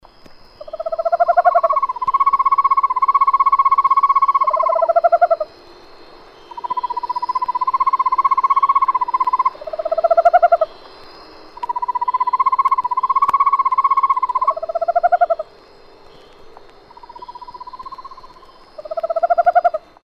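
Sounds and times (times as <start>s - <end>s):
Megascops choliba calling: 0.6s - 5.5s, 6.4s - 10.7s, 11.6s - 15.4s, 16.9s - 19.8s.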